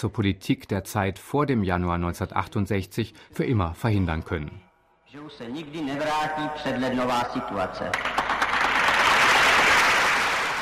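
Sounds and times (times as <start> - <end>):
speech: 0.0 - 4.6, 5.2 - 8.3
mostly student audience applauding: 7.8 - 10.6.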